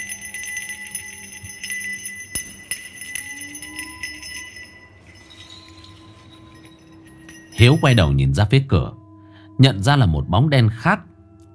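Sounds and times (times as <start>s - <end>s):
spirit-welcoming bell at a fortune-telling shrine jingling: 0.0s - 8.5s
speech: 7.6s - 9.0s, 9.6s - 11.5s.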